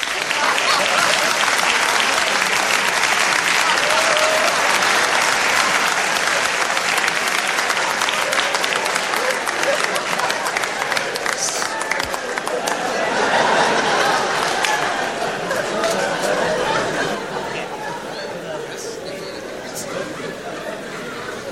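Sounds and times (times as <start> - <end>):
faint voices and cheers: 0.0 - 21.5
laughter: 0.0 - 21.5
loud sustained applause from a large crowd: 0.0 - 21.5.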